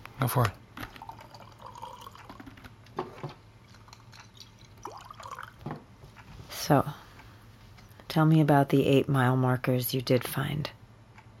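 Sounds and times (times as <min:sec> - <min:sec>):
hum: 0:00.0 - 0:11.3
speech: 0:00.2 - 0:00.6, 0:06.7 - 0:07.0, 0:08.2 - 0:10.8
whiskey poured into a glass in an office: 0:00.8 - 0:02.5, 0:03.6 - 0:05.6.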